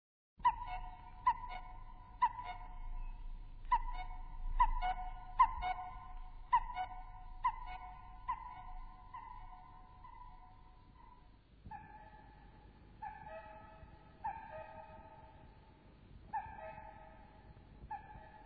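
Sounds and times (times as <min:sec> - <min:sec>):
common cuckoo two-note calls: 0:00.5 - 0:11.1
low rumbling background noise: 0:00.8 - 0:11.7.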